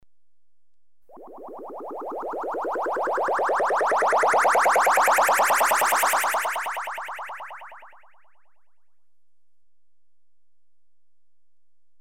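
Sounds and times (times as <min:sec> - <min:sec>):
electronically generated bubbles rising in pitch: 0:01.1 - 0:08.5.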